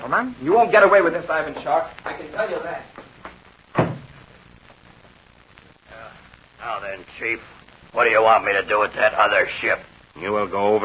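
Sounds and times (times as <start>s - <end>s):
speech: 0.0s - 3.1s, 6.6s - 10.8s
plane rear compartment door shutting with a thud: 3.7s - 4.2s.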